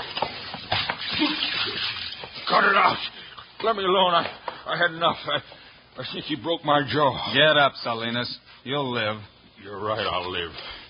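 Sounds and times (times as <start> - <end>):
water pouring from a pitcher: 0.0 - 3.5
speech: 2.5 - 10.8.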